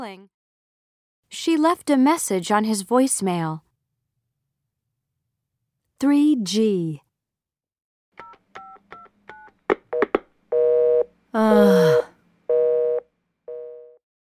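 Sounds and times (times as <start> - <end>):
speech: 0.0 - 0.4, 1.3 - 3.6, 6.0 - 7.0, 11.4 - 12.0
telephone keypad dialing tones: 8.2 - 11.1
telephone busy signal: 12.5 - 14.0.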